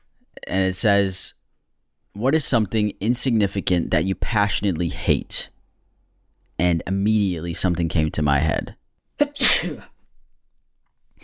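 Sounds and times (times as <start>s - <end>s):
speech: 0.6s - 1.4s, 2.2s - 5.5s, 6.6s - 9.9s
sneeze: 9.2s - 9.9s.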